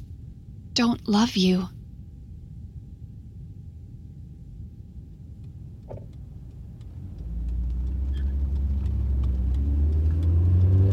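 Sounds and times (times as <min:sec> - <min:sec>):
speech: 0:00.8 - 0:01.8
car engine rumble driving through a rocky desert: 0:02.2 - 0:10.9.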